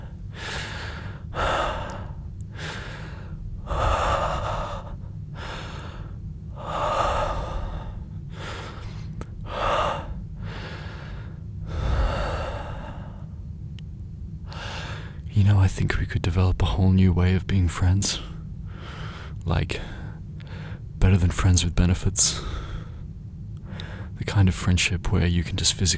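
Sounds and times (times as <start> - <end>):
soft breathing into someone's ear: 0.0 - 13.5, 14.4 - 15.3, 18.2 - 20.9, 22.3 - 24.2
speech: 15.5 - 18.3, 19.4 - 20.0, 21.0 - 22.6, 24.4 - 25.9.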